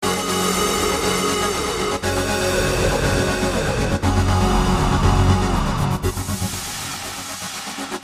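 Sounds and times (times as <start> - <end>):
Goa trance music with filters: 0.0 - 8.0.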